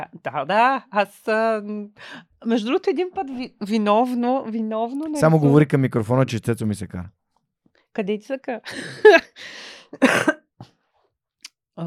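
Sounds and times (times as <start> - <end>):
speech: 0.0 - 7.2, 8.0 - 10.7
laughter: 8.7 - 9.4
wheezy breath: 9.4 - 10.0
person recovering from an illness coughing: 10.0 - 10.4.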